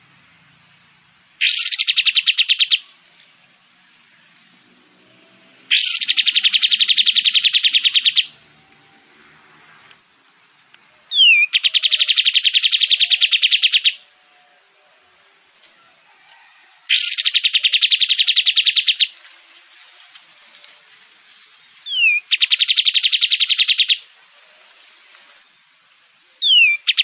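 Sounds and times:
kapas tembak songbird singing fast machine-gun-like trills: 0:01.4 - 0:08.9, 0:10.7 - 0:15.0, 0:16.8 - 0:27.0.

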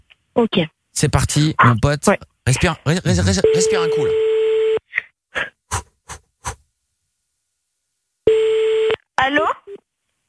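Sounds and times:
speech: 0:00.4 - 0:04.3, 0:09.3 - 0:09.5
telephone ringing tone: 0:03.4 - 0:04.8, 0:08.3 - 0:09.0.

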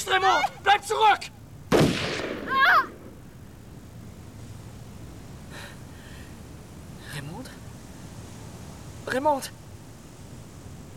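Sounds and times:
speech: 0:00.1 - 0:01.4, 0:09.1 - 0:09.6
pistol shot fired during an armed standoff: 0:01.7 - 0:03.2.

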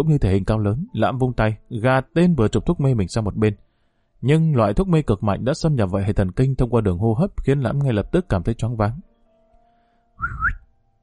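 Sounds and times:
speech: 0:00.0 - 0:03.6, 0:04.2 - 0:09.1, 0:10.2 - 0:10.5
man whistling as a signal: 0:10.2 - 0:10.7.

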